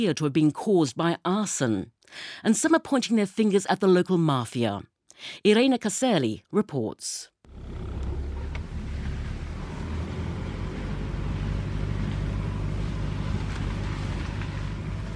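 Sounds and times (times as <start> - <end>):
speech: 0.0 - 7.9
car engine and road drone driving up the volcanic slopes of Mount Vesuvius: 7.5 - 15.1.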